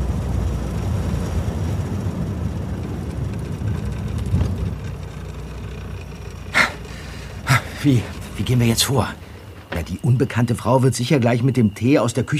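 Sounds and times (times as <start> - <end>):
MG sports car engine rumbling as it pulls in and stops: 0.0 - 12.3
speech: 7.8 - 12.3.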